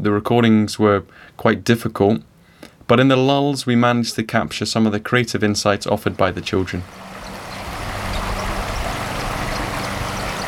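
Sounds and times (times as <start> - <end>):
speech: 0.0 - 2.3, 2.9 - 7.4
river water rushing beneath a bridge in autumn: 6.8 - 10.4.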